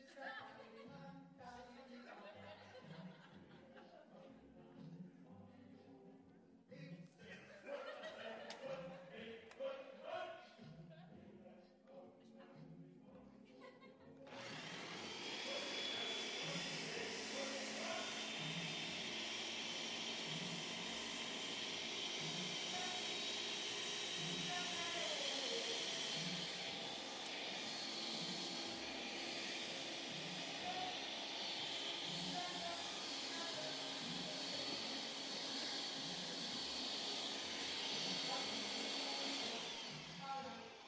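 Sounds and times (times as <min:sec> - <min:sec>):
laughter: 0:00.0 - 0:01.3, 0:01.9 - 0:04.4, 0:07.2 - 0:11.2, 0:13.4 - 0:14.3, 0:15.4 - 0:19.2
blender whirring: 0:14.3 - 0:40.8.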